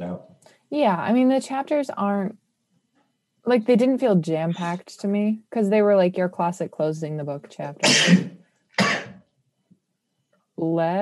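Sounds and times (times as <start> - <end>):
speech: 0.7 - 2.4, 3.4 - 8.4, 10.6 - 10.9
person with seasonal allergies sneezing: 7.8 - 9.2.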